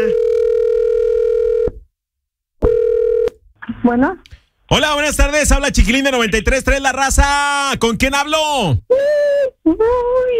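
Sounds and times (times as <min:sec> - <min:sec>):
telephone ringback tone on a radio call to a contest winner: 0:00.0 - 0:01.8, 0:02.6 - 0:03.3
speech: 0:03.9 - 0:10.3.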